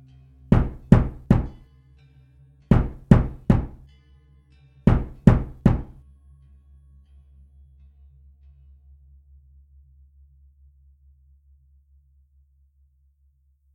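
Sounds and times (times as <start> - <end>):
knocks on a door: 0.5 - 1.6, 2.7 - 3.8, 4.9 - 6.0.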